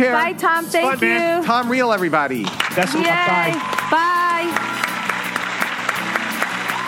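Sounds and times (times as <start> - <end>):
speech: 0.0 - 4.8
crowd applauding: 2.4 - 6.8.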